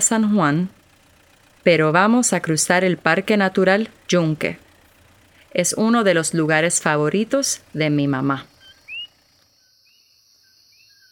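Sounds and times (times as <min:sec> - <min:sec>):
speech: 0:00.1 - 0:00.8, 0:01.6 - 0:04.6, 0:05.5 - 0:08.5
high insect drone: 0:06.9 - 0:11.1
coquí frogs calling in whistled chirps: 0:07.9 - 0:11.1.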